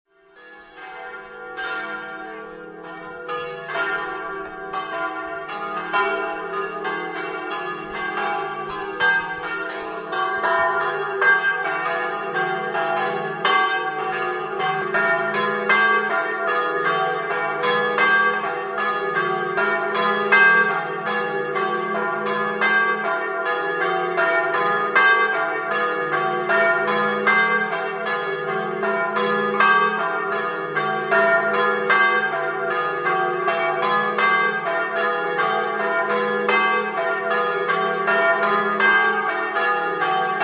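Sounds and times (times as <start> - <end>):
bells ringing: 0.2 - 40.4.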